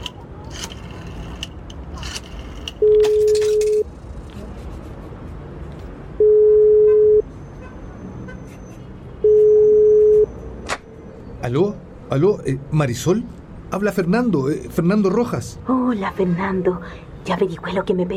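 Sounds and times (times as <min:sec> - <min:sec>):
faint outdoor traffic noise: 0:00.0 - 0:18.1
public telephone ringback tone heard through the receiver: 0:02.8 - 0:03.8, 0:06.2 - 0:07.2, 0:09.2 - 0:10.3
speech: 0:11.5 - 0:18.1.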